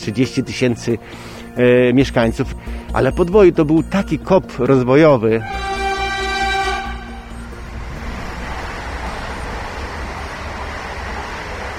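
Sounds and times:
speech: 0:00.0 - 0:05.7
passing train horn: 0:05.4 - 0:08.0
train rumbling past: 0:05.4 - 0:11.7.

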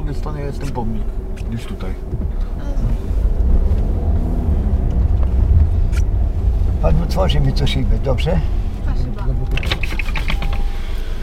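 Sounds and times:
light road noise: 0:00.0 - 0:11.2
low engine rumble inside a slowly moving car: 0:00.0 - 0:11.2
speech: 0:00.1 - 0:03.1, 0:06.8 - 0:09.9.

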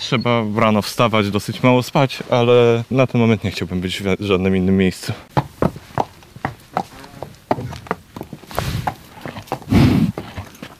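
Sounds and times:
speech: 0:00.1 - 0:05.3
restless horse stamping hooves: 0:05.3 - 0:10.7
horse snorting: 0:06.9 - 0:10.7.

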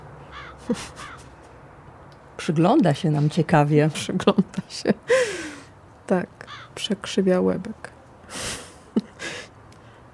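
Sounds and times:
low steady outdoor hum: 0:00.0 - 0:10.1
crow giving harsh raspy caws: 0:00.3 - 0:01.3, 0:06.4 - 0:06.8
speech: 0:00.7 - 0:01.2, 0:02.4 - 0:05.4, 0:06.1 - 0:08.4.

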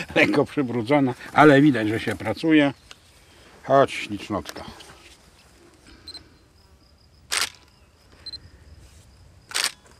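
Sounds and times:
speech: 0:00.2 - 0:02.8, 0:03.7 - 0:04.8
camera shutter clicks photographing an animal from above: 0:07.3 - 0:07.7, 0:09.5 - 0:09.9.

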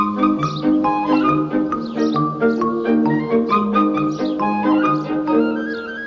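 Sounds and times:
small grey bird chirping: 0:00.0 - 0:06.0.

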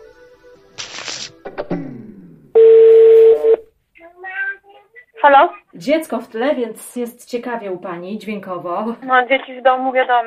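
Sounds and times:
telephone tones during call reconnection: 0:02.6 - 0:03.7
speech: 0:05.2 - 0:10.2.

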